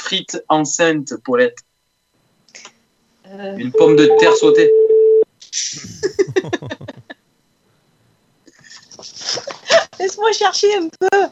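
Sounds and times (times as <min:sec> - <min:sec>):
noisy phone line sounds: 0:00.0 - 0:11.2
speech: 0:00.1 - 0:01.7, 0:03.3 - 0:04.8, 0:10.0 - 0:11.2
rapid buzzy electronic ringing pattern over a phone line: 0:03.4 - 0:05.2
short steady phone tone: 0:03.6 - 0:05.3
laughter: 0:05.7 - 0:07.2, 0:08.5 - 0:10.0.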